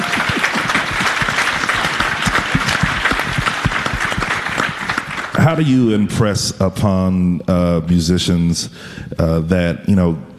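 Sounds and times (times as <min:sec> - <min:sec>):
room full of people applauding: 0:00.0 - 0:06.0
speech: 0:05.5 - 0:10.3.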